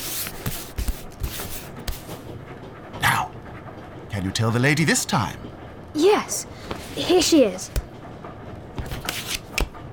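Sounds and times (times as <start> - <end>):
playing cards being shuffled and moved in a card trick: 0.0 - 2.2, 8.8 - 9.7
speech: 4.2 - 7.8.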